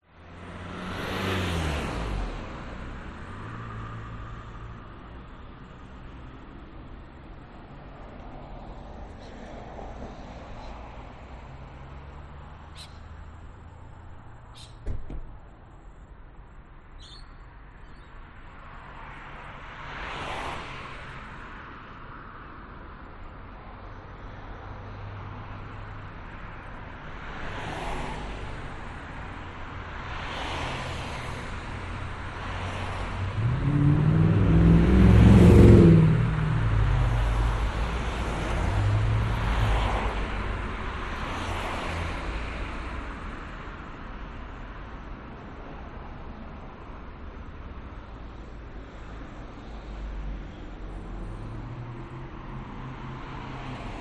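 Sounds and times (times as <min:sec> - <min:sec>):
town traffic cars passing by: 0:00.0 - 0:53.9
quiet birds in Maroochydore Australia: 0:12.4 - 0:18.6.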